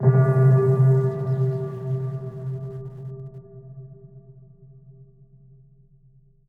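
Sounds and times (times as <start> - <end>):
lo-fi hip hop synth pad chord in C: 0.0 - 3.3.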